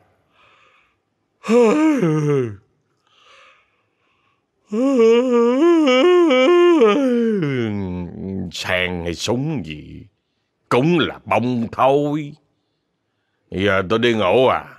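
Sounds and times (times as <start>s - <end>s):
long voiced yawn: 1.4s - 2.6s, 4.7s - 7.8s
speech: 1.5s - 2.6s, 4.7s - 6.0s, 8.5s - 10.1s, 10.7s - 12.4s, 13.5s - 14.7s.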